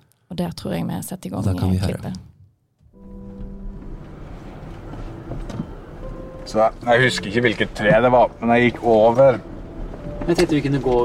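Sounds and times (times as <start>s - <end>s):
speech: 0.3s - 2.3s, 6.5s - 9.5s, 10.3s - 11.0s
parked pickup truck engine idling: 3.0s - 11.0s.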